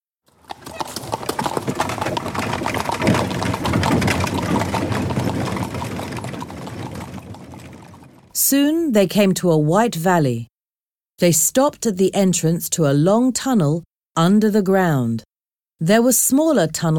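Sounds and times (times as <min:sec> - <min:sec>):
two horses clopping hooves while pulling a chariot: 0:00.3 - 0:08.3
speech: 0:08.5 - 0:10.5, 0:11.2 - 0:16.9.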